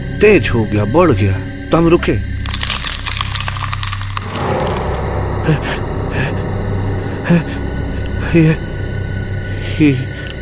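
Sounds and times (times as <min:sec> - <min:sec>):
speech: 0:00.2 - 0:02.3, 0:07.3 - 0:07.5, 0:08.3 - 0:08.7, 0:09.8 - 0:10.1
loud dense crackling and clattering from beneath the listeners' feet: 0:02.4 - 0:06.4
steady low rumble: 0:02.7 - 0:10.4.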